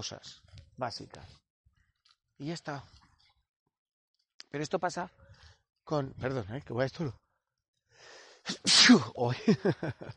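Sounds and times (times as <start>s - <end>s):
speech: 0.0s - 1.4s, 2.4s - 3.0s, 4.5s - 5.2s, 5.9s - 7.2s, 8.0s - 10.1s
breathy inhale: 7.9s - 8.5s
person sneezing: 8.5s - 9.2s
laughter: 9.2s - 10.1s.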